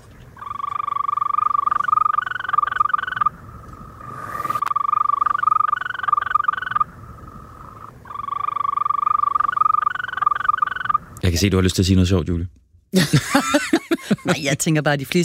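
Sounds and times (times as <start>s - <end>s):
European green toad calling in trills: 0.3s - 11.3s
speech: 11.3s - 15.2s
laughter: 13.0s - 14.7s.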